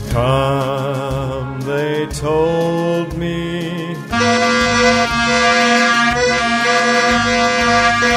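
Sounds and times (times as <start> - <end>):
speech: 0.2 - 1.0, 1.7 - 5.6
plastic vuvuzela blaring a buzzing brassy note: 4.1 - 8.1.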